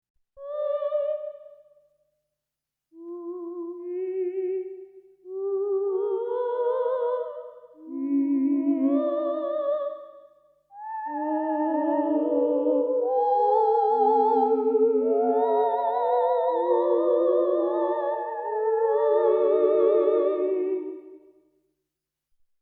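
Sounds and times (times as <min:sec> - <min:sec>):
FM synthesized female voices: 0:03.0 - 0:10.0, 0:10.8 - 0:21.1.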